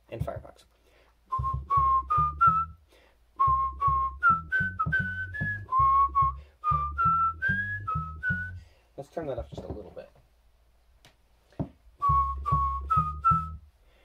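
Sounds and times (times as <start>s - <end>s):
speech: 0.1s - 0.7s, 9.2s - 10.2s
deep buzzy bass whistle played through a web browser: 1.3s - 8.7s, 12.0s - 13.7s.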